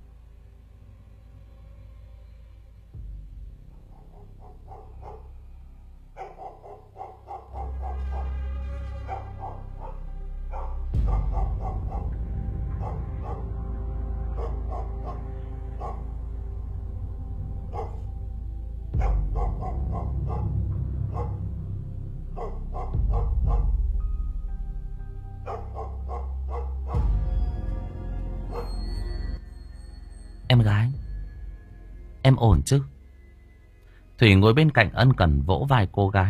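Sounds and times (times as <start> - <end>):
steady low rumbling background: 0.0 - 36.2
dogs barking in a village: 3.7 - 5.5, 6.1 - 16.4, 17.6 - 18.2, 19.0 - 21.5, 22.3 - 23.9, 25.4 - 27.3, 28.4 - 29.2
speech: 30.6 - 31.0, 32.4 - 32.9, 34.2 - 36.2.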